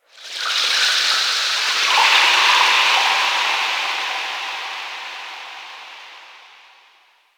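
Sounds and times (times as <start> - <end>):
small ocean underwater texture ambience: 0.3 - 6.8.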